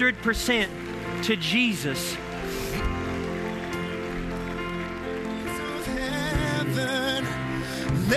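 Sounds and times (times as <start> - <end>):
speech: 0.0 - 2.6
large church audience applauding: 0.0 - 8.1
loud sustained music: 0.0 - 8.1
person singing: 5.4 - 8.1.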